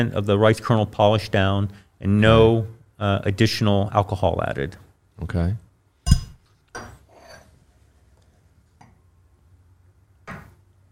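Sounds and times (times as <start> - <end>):
speech: 0.0 - 5.6
glassware clinking: 6.1 - 6.4.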